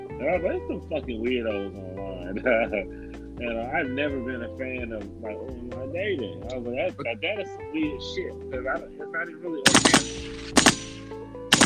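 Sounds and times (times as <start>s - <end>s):
speech: 0.2s - 10.8s
laughter: 2.2s - 2.9s, 6.5s - 7.5s
sharp loud gunshots with echo: 9.7s - 11.6s.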